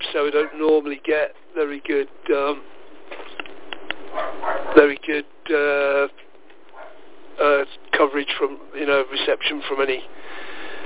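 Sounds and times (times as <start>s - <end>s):
speech: 0.1s - 2.7s, 4.1s - 6.2s, 7.4s - 10.2s
dog barking at a campsite: 0.4s - 0.7s, 4.1s - 4.8s, 6.7s - 7.0s.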